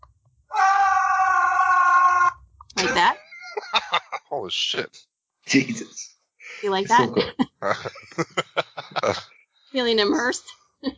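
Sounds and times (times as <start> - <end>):
piercing scream: 0.5 - 2.4
laughter: 2.8 - 4.9, 6.5 - 9.3
speech: 3.0 - 10.9.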